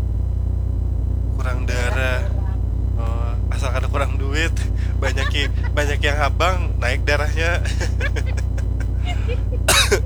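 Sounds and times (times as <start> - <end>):
steady low electrical hum: 0.0 - 10.0
laughter: 1.4 - 10.0
speech: 4.2 - 10.0
person coughing: 9.1 - 10.0
throat clearing: 9.1 - 10.0.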